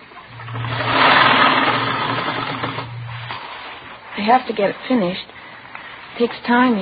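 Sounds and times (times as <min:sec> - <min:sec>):
sewing machine stitching rows of ruffles: 0:00.0 - 0:04.0
speech: 0:04.2 - 0:05.3, 0:06.2 - 0:06.7.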